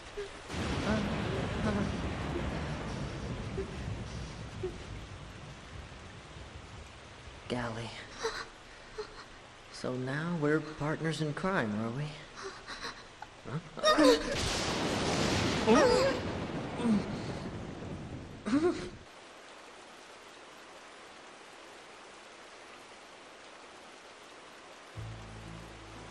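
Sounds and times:
heavy rain: 0.0 - 26.1
loud rolling crash of thunder: 0.5 - 7.2, 14.1 - 18.5
speech: 7.5 - 8.1, 9.8 - 12.2, 15.7 - 16.1.

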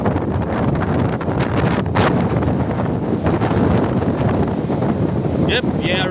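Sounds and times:
strong wind blowing across the microphone at sea: 0.0 - 6.0.

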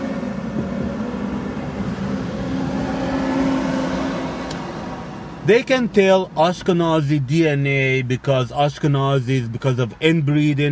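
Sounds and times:
large truck engine rumbling and revving as it passes: 0.0 - 10.6
speech: 5.5 - 10.6.

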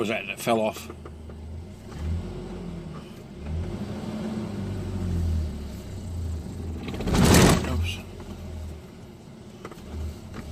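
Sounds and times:
speech: 0.0 - 1.1, 7.9 - 8.1
car engine revving pulling away in third gear up a hill: 1.1 - 10.5.

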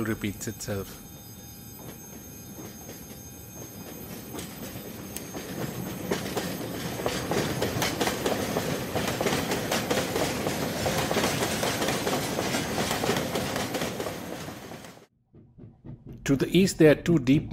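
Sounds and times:
speech: 0.0 - 1.1, 16.3 - 17.5
coal train hauled by a locomotive rumbling on rails: 0.0 - 17.5
coal train wheels clickety-clack over rail joints: 1.8 - 15.1.

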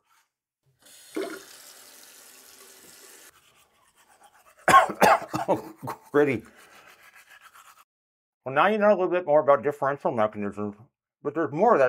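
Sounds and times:
bathroom noise: 0.0 - 7.8
teeth brushed with a new toothbrush in a bathroom: 3.2 - 7.9
speech: 4.9 - 6.6, 8.5 - 11.8.

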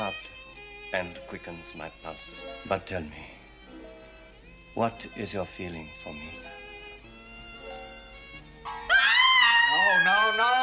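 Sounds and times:
speech: 0.9 - 3.4, 4.8 - 6.5, 10.0 - 10.6
loud shrill scream sound effect: 8.9 - 10.6.

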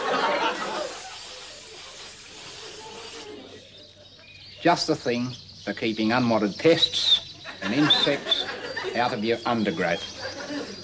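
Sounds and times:
laughter: 0.0 - 4.4, 7.0 - 10.8
aerosol garden spray hissing: 0.4 - 3.5
speech: 4.6 - 10.3.

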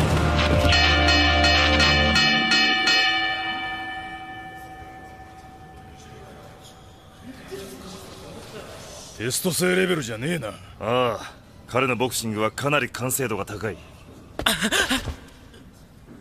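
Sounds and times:
boxing match gong clanging: 0.0 - 7.0
speech: 9.2 - 15.2.

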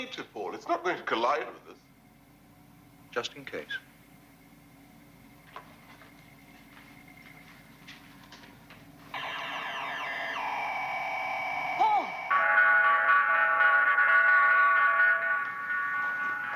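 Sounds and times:
speech: 0.0 - 1.8, 3.1 - 3.9
electronic computer collision alarm blaring: 9.2 - 16.5.

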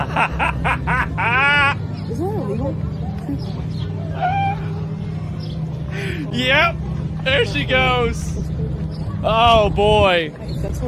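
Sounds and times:
laughter: 0.0 - 3.5
steady low rumble: 0.0 - 10.8
speech: 0.2 - 0.9, 6.4 - 8.4, 9.2 - 10.8
faint bird calls: 3.2 - 6.1
harsh strained squawk from a bird possibly a duck: 4.1 - 4.8.

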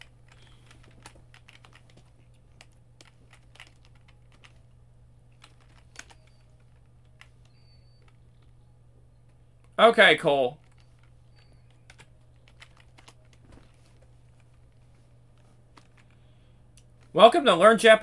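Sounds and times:
typing on a computer keyboard held in a lap: 0.0 - 4.6, 5.4 - 8.2, 10.6 - 13.4
low steady electrical hum: 0.0 - 18.0
speech: 9.8 - 10.6, 17.2 - 18.0.

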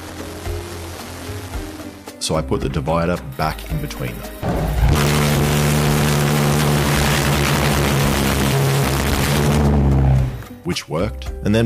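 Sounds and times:
speech: 2.2 - 4.6, 10.7 - 11.6
two small engines roaring, one flaming out: 4.4 - 10.4.

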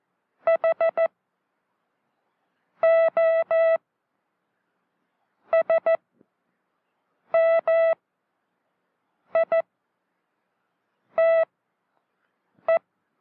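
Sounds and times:
Morse code letters keyed as a single-pitch beep tone: 0.5 - 1.1, 2.8 - 3.8, 5.5 - 6.0, 7.3 - 8.0, 9.3 - 9.7, 11.2 - 11.5.

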